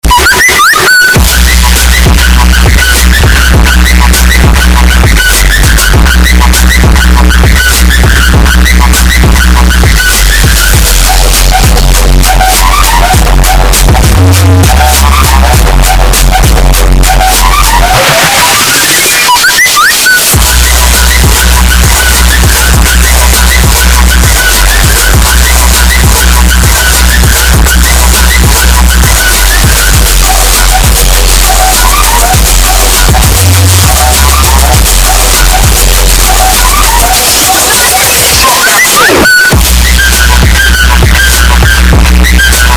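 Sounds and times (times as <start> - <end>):
distorted phone whistle trap remix: 0.0 - 42.7.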